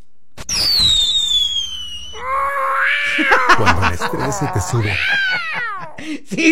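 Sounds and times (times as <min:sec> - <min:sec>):
firework rocket whistling into the air: 0:00.4 - 0:02.3
laughter: 0:03.1 - 0:06.0
speech: 0:03.6 - 0:06.5.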